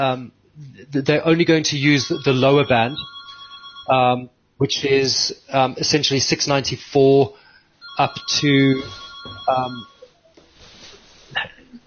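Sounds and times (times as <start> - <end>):
speech: 0.0 - 3.1, 3.9 - 7.4, 8.0 - 9.9
telephone ringing: 1.9 - 4.0, 7.8 - 10.2.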